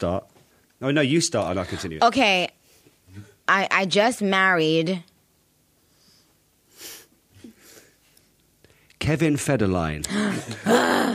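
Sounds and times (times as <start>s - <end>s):
speech: 0.0s - 5.1s, 9.0s - 11.1s
person gasping: 10.1s - 11.1s.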